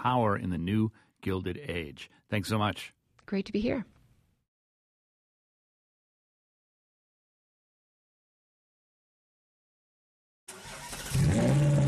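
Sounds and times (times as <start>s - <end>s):
speech: 0.0s - 4.0s
crimson Ferrari sports car engine starting and revving on the street: 10.5s - 11.8s.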